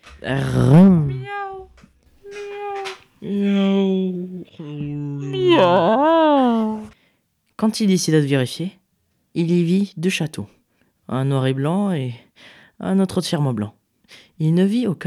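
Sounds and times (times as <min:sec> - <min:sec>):
speech: 0:00.2 - 0:01.0, 0:07.6 - 0:08.8, 0:09.4 - 0:15.0
person imitating drawn-out wavering cat meows: 0:00.2 - 0:06.9.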